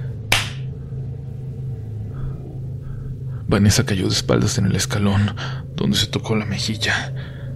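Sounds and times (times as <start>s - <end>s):
low rumbling hum: 0.0s - 7.5s
sharp slap: 0.3s - 0.7s
speech: 3.5s - 7.4s.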